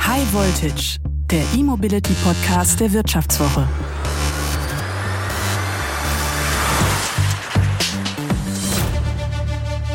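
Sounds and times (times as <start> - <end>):
speech: 0.2 - 4.2
car engine running and revving: 3.3 - 9.9.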